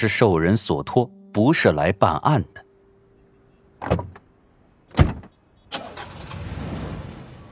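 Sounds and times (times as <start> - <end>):
speech: 0.0 - 2.6, 3.8 - 4.2
car door thuds of a small car: 3.8 - 4.2, 4.9 - 5.4.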